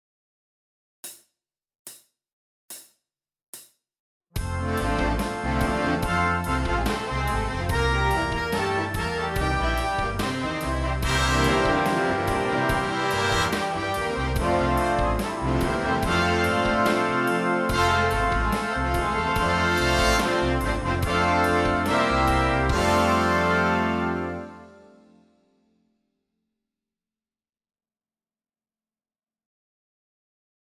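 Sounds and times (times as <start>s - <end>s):
rhythm study: 4.4s - 24.6s.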